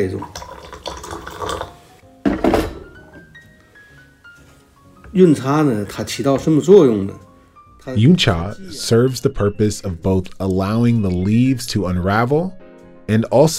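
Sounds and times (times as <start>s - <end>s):
speech: 0.0s - 0.4s, 5.2s - 13.5s
100 °C water poured into a cup for a first tea steep: 0.0s - 1.9s, 9.8s - 11.7s.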